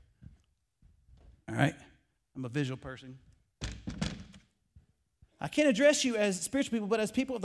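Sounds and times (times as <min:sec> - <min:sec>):
speech: 0:01.5 - 0:01.8, 0:02.4 - 0:03.4, 0:05.4 - 0:07.4
wooden chair being shifted and set down: 0:03.6 - 0:04.4
chair knocking faintly as it settles: 0:03.6 - 0:04.5.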